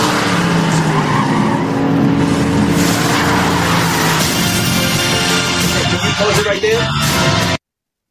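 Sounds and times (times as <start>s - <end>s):
Tesla car tires skidding and squealing: 0.0s - 5.9s
roar of Tesla cars in a movie scene: 0.0s - 7.2s.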